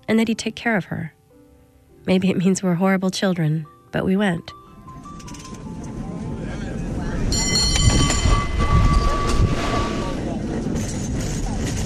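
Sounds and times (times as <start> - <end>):
speech: 0.1 - 1.2, 2.1 - 4.6
cable car clattering and rumbling along its track: 6.9 - 11.8
metallic ringing squeal: 7.3 - 10.3.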